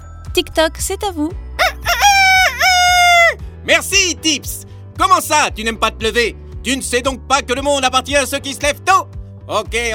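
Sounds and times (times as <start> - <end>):
speech: 0.4 - 1.4, 3.6 - 9.9
rooster crowing: 1.6 - 3.4.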